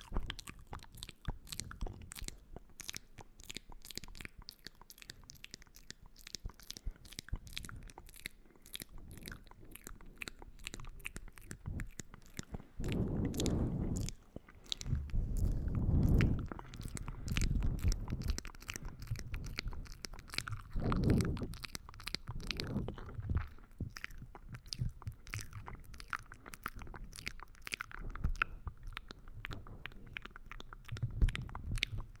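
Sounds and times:
mouth chewing and biting with wet crunches: 0:00.0 - 0:32.1
low swells: 0:12.8 - 0:19.6.

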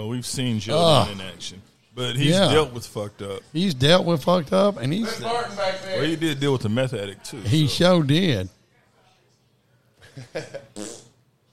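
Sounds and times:
speech: 0:00.0 - 0:08.6, 0:10.2 - 0:10.9
fart: 0:10.7 - 0:11.2.

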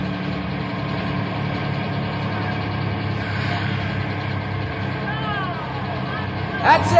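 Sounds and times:
bus engine idling: 0:00.0 - 0:06.9.

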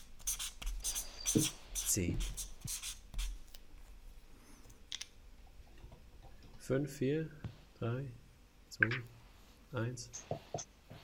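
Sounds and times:
pens scratching on paper as quiz players write answers: 0:00.0 - 0:03.4
speech: 0:01.4 - 0:02.8, 0:06.7 - 0:08.2, 0:08.8 - 0:10.7.

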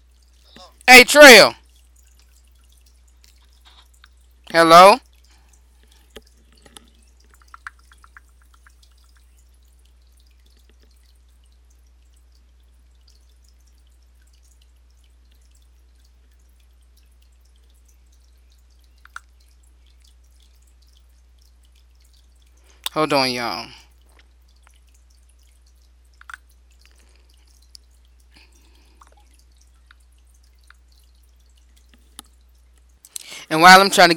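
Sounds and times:
water trickling and dripping in a fish tank: 0:00.0 - 0:34.1
speech: 0:00.9 - 0:01.6, 0:04.5 - 0:05.0, 0:23.0 - 0:23.8, 0:33.5 - 0:34.1.

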